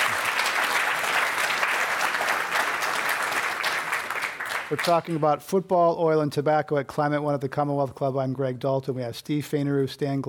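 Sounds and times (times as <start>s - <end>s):
audience applause: 0.0s - 5.2s
speech: 4.7s - 10.2s.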